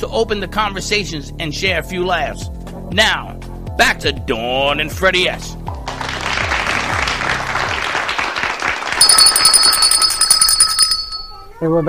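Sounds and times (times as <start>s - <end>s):
speech: 0.1s - 5.6s, 11.6s - 11.8s
steady wash of applause-like noise: 5.7s - 10.1s
red bell ringing with bright sustained metallic tones: 9.0s - 11.6s.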